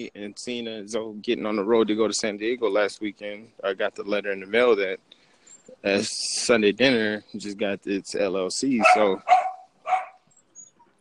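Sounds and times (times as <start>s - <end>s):
speech: 0.0s - 9.4s
dog barking: 8.8s - 10.2s.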